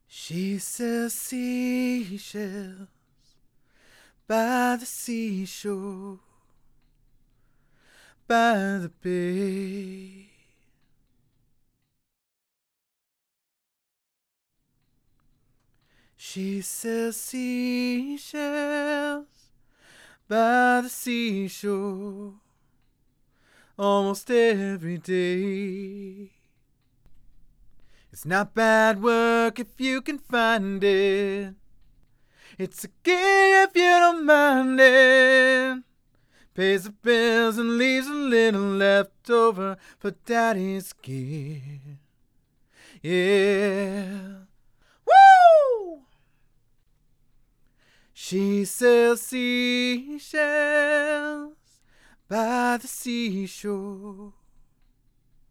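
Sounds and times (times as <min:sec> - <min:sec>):
a cappella singing: 0:00.1 - 0:02.9, 0:04.3 - 0:06.4, 0:08.2 - 0:10.4, 0:16.2 - 0:19.4, 0:20.2 - 0:22.4, 0:23.8 - 0:26.4, 0:28.2 - 0:31.6, 0:32.6 - 0:35.9, 0:36.6 - 0:42.0, 0:43.0 - 0:44.5, 0:45.1 - 0:46.0, 0:48.2 - 0:51.6, 0:52.3 - 0:54.4.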